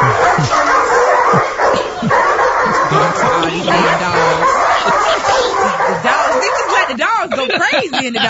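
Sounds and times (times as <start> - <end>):
dogs whimpering yelps: 0.0 - 7.2
dogs barking and yipping: 0.0 - 8.2
laughter: 0.0 - 8.2
voices talking: 0.0 - 8.2.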